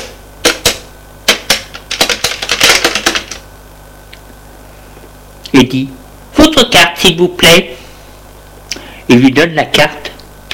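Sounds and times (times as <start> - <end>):
typing on a computer keyboard at a school reception desk: 0.4 - 3.4
speech: 5.5 - 7.8, 9.1 - 10.1.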